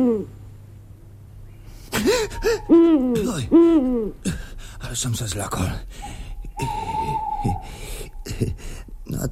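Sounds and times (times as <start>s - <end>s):
owl hooting: 0.0s - 0.4s, 1.6s - 4.2s, 5.8s - 9.1s
speech: 0.0s - 0.4s, 2.2s - 9.3s
low rumble: 0.0s - 9.3s.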